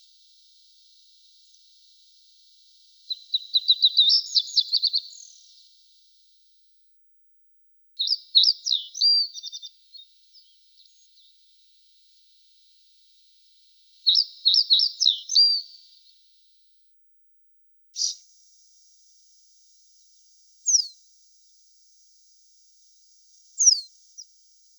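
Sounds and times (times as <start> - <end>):
pine bunting singing trilled phrases: 0.3 - 6.0, 8.0 - 16.2, 18.0 - 18.4, 20.7 - 21.0, 23.3 - 24.3.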